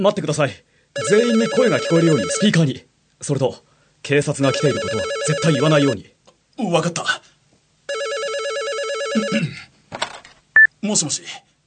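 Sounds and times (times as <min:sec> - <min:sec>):
speech: 0:00.0 - 0:07.3, 0:09.2 - 0:09.6, 0:10.8 - 0:11.5
telephone ringing with an electronic trill: 0:01.0 - 0:02.6, 0:04.5 - 0:06.0, 0:07.9 - 0:09.5.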